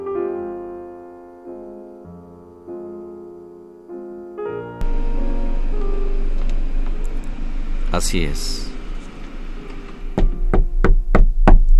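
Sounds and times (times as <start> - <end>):
low hum: 4.8 - 11.7
speech: 7.9 - 8.7
firm knocks on a door: 10.2 - 11.7.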